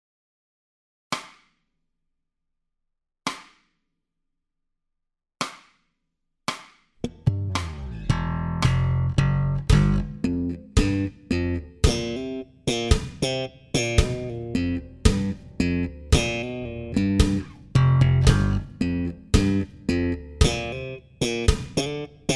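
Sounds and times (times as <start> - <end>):
slow slap bass theme: 7.0 - 22.3.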